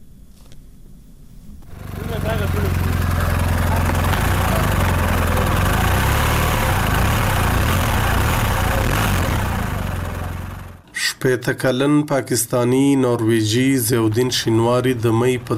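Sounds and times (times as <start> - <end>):
motorcycle engine running: 1.6 - 10.8
speech: 11.2 - 15.5.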